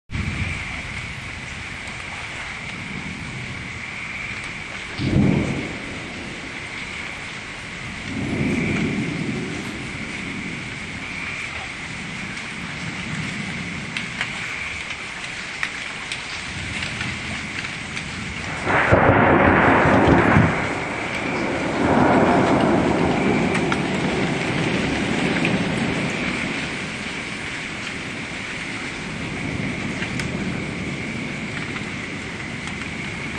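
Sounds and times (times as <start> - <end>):
severe thunder: 0.1 - 33.3.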